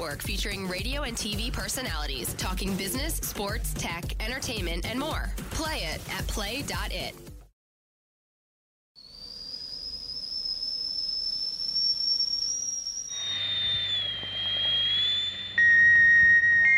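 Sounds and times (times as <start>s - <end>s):
speech: 0.0s - 7.3s
tea kettle whistling: 9.0s - 16.7s
steam hissing from a tea kettle: 9.5s - 15.6s.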